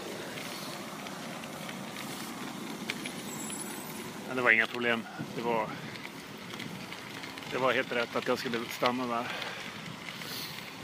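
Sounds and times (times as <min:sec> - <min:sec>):
bicycle tyres rolling over an icy sanded cycle path: 0:00.0 - 0:10.8
speech: 0:04.3 - 0:06.1, 0:07.5 - 0:09.6.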